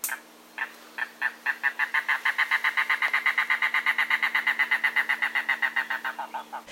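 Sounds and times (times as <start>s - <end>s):
mangrove cuckoo calling on Saddlebunch Key: 0.6s - 6.7s.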